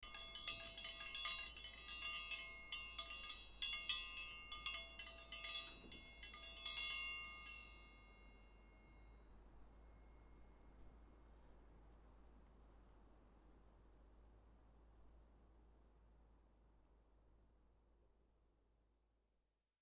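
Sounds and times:
dinner bell triangle: 0.0 - 10.4.

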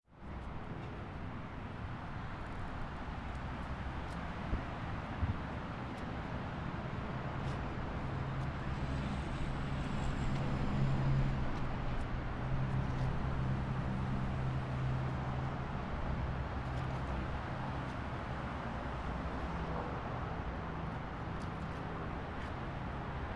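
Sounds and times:
highway traffic near waterfront: 0.1 - 23.3.

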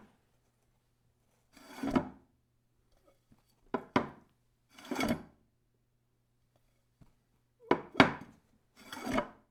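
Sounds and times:
porcelain bowl sliding: 1.6 - 2.2, 4.7 - 5.3, 8.8 - 9.4.

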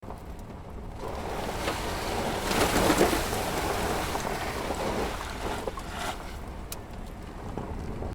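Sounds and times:
car driving through icy puddle: 1.0 - 6.6.

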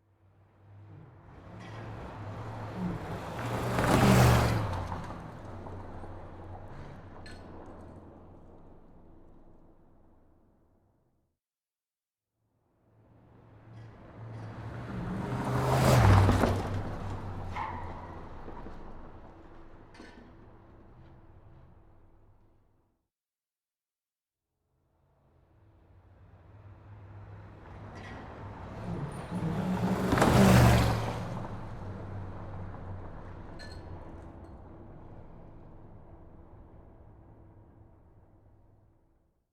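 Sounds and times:
muscle car speeding on a highway: 0.6 - 9.2, 13.3 - 21.9, 26.2 - 37.6.

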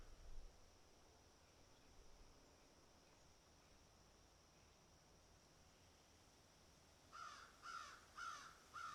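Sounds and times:
crow giving harsh rhythmic caws: 7.2 - 8.9.

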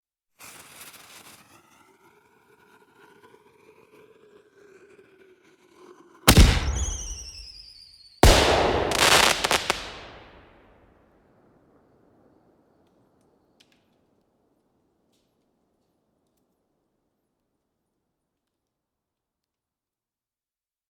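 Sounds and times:
explosion with hiss and bang: 6.3 - 7.5, 8.2 - 10.5.

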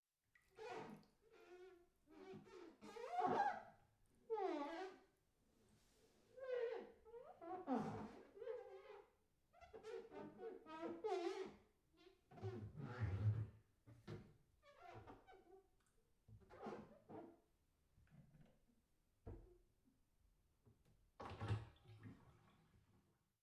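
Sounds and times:
wet squeak rub on bathtub: 0.6 - 3.7, 4.3 - 5.1, 6.4 - 13.4, 16.5 - 17.3.

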